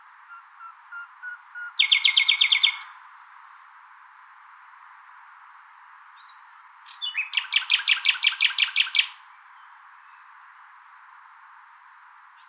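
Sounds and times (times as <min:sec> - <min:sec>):
common nightingale Luscinia megarhynchos song with whistle and rattling trill: 0:00.0 - 0:04.2, 0:05.2 - 0:10.6.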